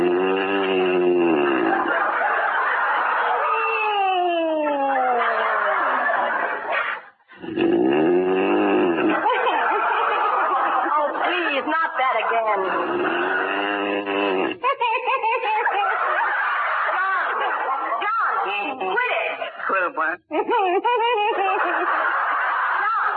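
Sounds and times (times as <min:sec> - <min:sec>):
loud exaggerated snoring: 0:00.0 - 0:01.9, 0:07.4 - 0:09.2, 0:12.6 - 0:14.6
laughter: 0:00.6 - 0:07.2, 0:08.4 - 0:23.1.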